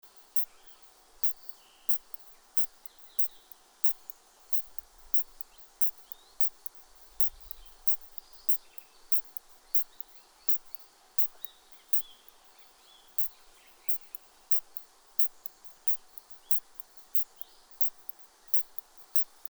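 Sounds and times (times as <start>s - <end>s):
Isophya camptoxypha bush-cricket in the Leithagebirge: 0.0s - 19.4s.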